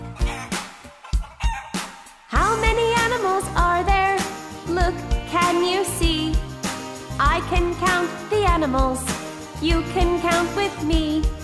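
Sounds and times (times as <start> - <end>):
light musical backing: 0.0 - 11.4
chickens clucking: 0.2 - 2.2
speech: 7.5 - 11.4.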